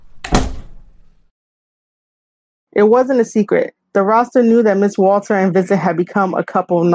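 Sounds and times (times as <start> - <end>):
door shutting thud: 0.0 - 1.1
speech: 2.8 - 6.9.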